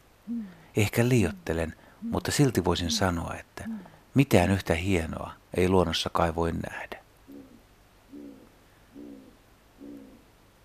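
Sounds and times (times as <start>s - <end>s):
background hiss: 0.0s - 10.6s
Great Grey Owl giving low muffled hoots: 0.2s - 4.0s, 7.3s - 10.6s
speech: 0.3s - 7.0s.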